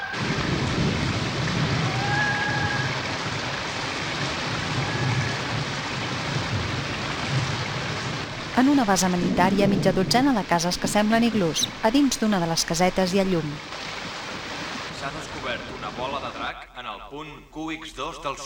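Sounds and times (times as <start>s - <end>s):
heavy rain pouring over a cave: 0.1s - 16.3s
low thunder rumbling: 0.2s - 3.4s, 4.5s - 12.5s
speech: 8.6s - 13.7s, 15.5s - 18.4s.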